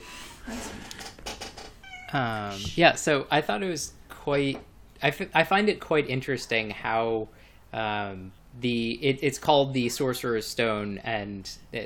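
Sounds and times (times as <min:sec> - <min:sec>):
faint hiss: 0:00.0 - 0:11.8
cat meowing: 0:01.8 - 0:02.6
speech: 0:02.1 - 0:11.8.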